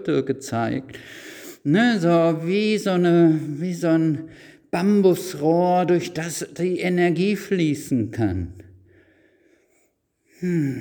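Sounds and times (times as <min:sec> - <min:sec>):
speech: 0:00.0 - 0:08.6, 0:10.4 - 0:10.7
deep breathing: 0:00.9 - 0:01.6, 0:08.8 - 0:10.7.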